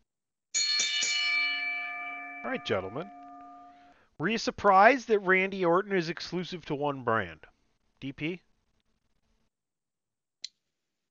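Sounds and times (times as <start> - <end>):
bright metal bell struck and ringing: 0.6 - 3.9
speech: 2.4 - 3.2, 4.2 - 8.4.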